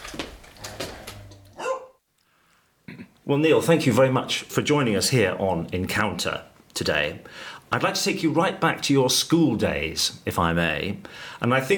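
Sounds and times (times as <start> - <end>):
dog barking and yelping while being squeezed in a studio: 1.2 - 2.0
speech: 3.3 - 11.7.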